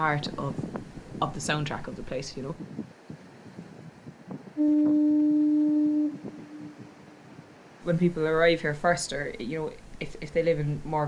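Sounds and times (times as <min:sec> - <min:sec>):
speech: 0:00.0 - 0:03.0, 0:07.9 - 0:11.0
coastal foghorn blast: 0:04.6 - 0:07.7.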